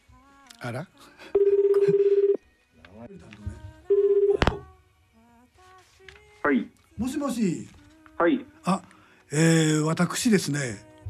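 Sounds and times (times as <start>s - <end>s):
speech: 0.6s - 2.0s, 6.5s - 10.9s
ringback tones of an outgoing phone call: 1.4s - 2.4s, 3.9s - 4.7s.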